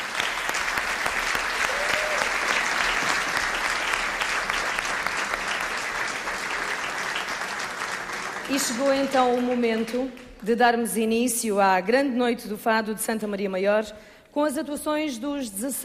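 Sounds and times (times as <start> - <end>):
sustained applause from a large audience: 0.0 - 10.2
speech: 8.5 - 15.8.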